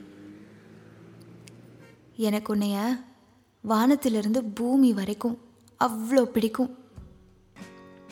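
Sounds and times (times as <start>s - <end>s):
engine drone and road rumble inside a moving college bus: 0.0s - 2.8s
faint higher-pitched bursts of traffic noise: 0.0s - 5.6s
speech: 2.2s - 6.8s.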